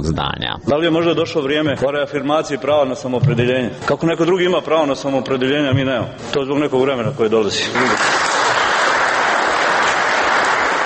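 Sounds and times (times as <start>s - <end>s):
speech: 0.0s - 8.2s
audience applause at a political speech: 7.6s - 10.8s.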